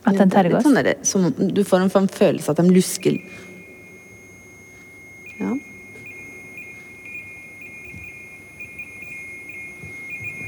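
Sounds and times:
speech: 0.1s - 3.5s
high-pitched alarm-like beeping from an electronic device with a circling light: 2.2s - 10.4s.

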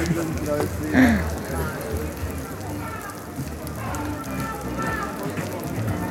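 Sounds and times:
indistinct voices of festival-goers murmuring: 0.0s - 6.1s
rain pattering on a hard surface at an outdoor festival: 0.0s - 6.1s.

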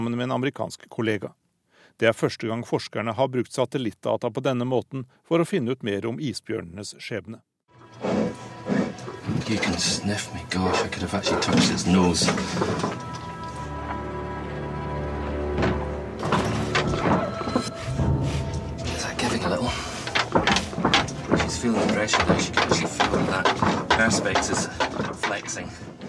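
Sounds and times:
speech: 0.0s - 8.4s, 9.4s - 13.2s, 21.6s - 26.0s
polar bear scraping a plexiglass camera cage: 8.0s - 13.6s, 18.8s - 26.0s
low hum: 13.1s - 21.9s.

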